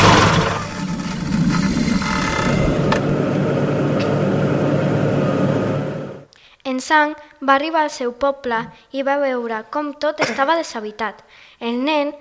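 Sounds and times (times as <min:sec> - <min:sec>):
car engine rumble: 0:00.0 - 0:06.3
road noise: 0:00.0 - 0:06.3
speech: 0:06.9 - 0:12.1.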